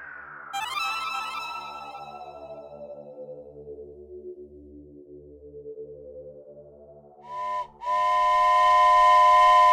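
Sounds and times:
train whistle: 7.3s - 9.7s.

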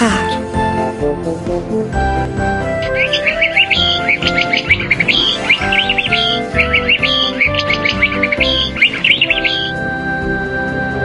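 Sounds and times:
instrumental music: 0.0s - 11.0s
canary singing in bright rapid warbling trills: 2.5s - 10.0s.

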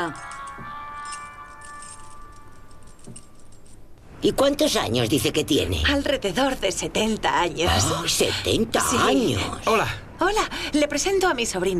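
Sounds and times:
speech: 0.0s - 0.7s, 4.2s - 11.7s
bunch of keys jangling as set down: 0.0s - 3.9s.

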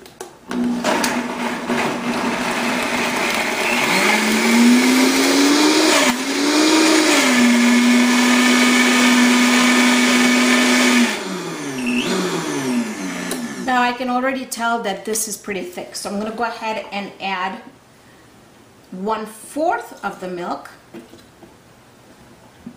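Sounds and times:
blender mixing vanilla and milk: 0.5s - 13.8s
speech: 14.6s - 17.7s, 19.0s - 20.8s.

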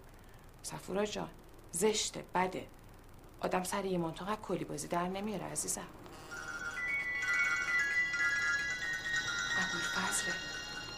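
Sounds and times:
speech: 0.7s - 2.8s, 3.4s - 6.3s, 9.6s - 10.5s
mobile phone electronic ringtone melody: 6.1s - 10.9s.

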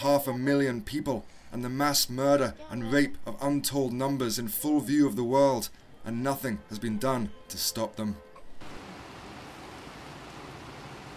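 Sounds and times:
speech: 0.0s - 8.3s
heavy rain pouring in refugee camps in Bangladesh: 8.6s - 11.1s.

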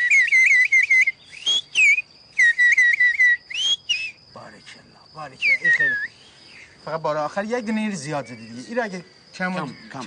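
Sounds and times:
person whistling an all-clear work signal: 0.0s - 4.2s
speech: 5.2s - 6.2s, 6.8s - 10.0s.

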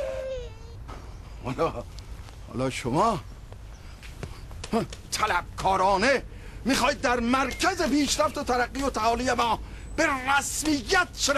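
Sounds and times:
baby crying: 0.0s - 0.8s
speech: 1.5s - 3.3s, 4.7s - 11.3s.

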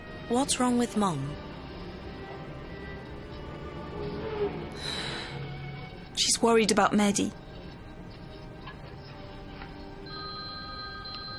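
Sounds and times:
speech: 0.3s - 1.4s, 6.4s - 7.4s
cell phone electronic ringtone of steady high tones: 10.0s - 11.3s.

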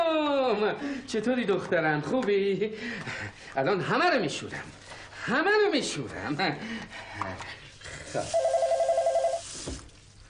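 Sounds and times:
faint household noise: 0.0s - 10.2s
speech: 0.6s - 8.6s
telephone ringing with a warbling electronic trill: 8.3s - 9.5s.

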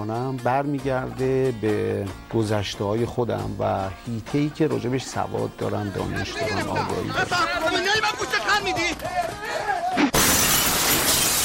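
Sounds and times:
speech: 0.0s - 10.1s
glass breaking: 10.1s - 11.4s.

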